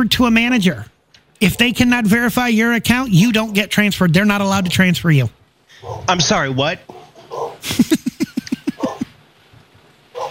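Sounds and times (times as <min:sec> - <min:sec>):
speech: 0:00.0 - 0:06.9, 0:07.6 - 0:08.0
dog barking short yappy barks: 0:01.4 - 0:01.8, 0:05.8 - 0:06.1, 0:06.9 - 0:07.6, 0:08.7 - 0:09.1
laughter: 0:07.6 - 0:09.1.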